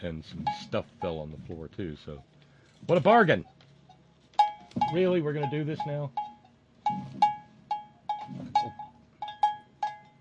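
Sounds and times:
speech: 0:00.0 - 0:03.6, 0:04.7 - 0:06.2, 0:08.3 - 0:08.8
goat's bell clanking: 0:00.3 - 0:01.3, 0:03.4 - 0:10.1.

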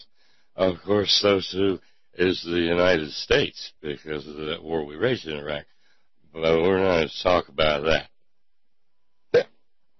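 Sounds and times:
speech: 0:00.6 - 0:05.7, 0:06.3 - 0:08.1
hiccup: 0:09.3 - 0:09.6.

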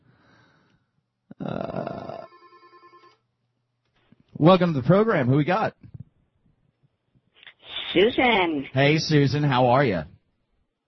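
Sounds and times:
telephone ringing with a fast warbling electronic pulse: 0:02.2 - 0:03.2
speech: 0:04.4 - 0:05.9, 0:08.0 - 0:10.1.

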